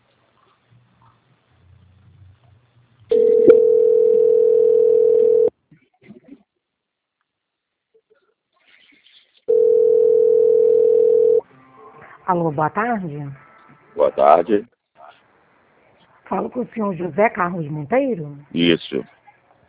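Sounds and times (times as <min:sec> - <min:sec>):
steady telephone line tone while a call is transferred: 0:03.1 - 0:05.5, 0:09.5 - 0:11.4
speech: 0:12.3 - 0:13.4, 0:14.0 - 0:14.7, 0:16.3 - 0:19.2.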